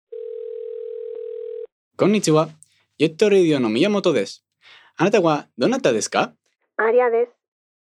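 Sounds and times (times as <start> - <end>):
steady continuous telephone dial tone: 0.1 - 1.7
speech: 2.0 - 7.4.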